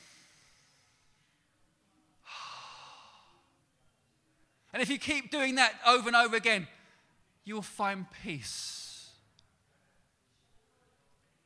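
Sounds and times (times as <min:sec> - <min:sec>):
deep breathing demonstration: 0:00.0 - 0:01.5, 0:02.2 - 0:03.6
speech: 0:04.7 - 0:06.8, 0:07.4 - 0:08.8.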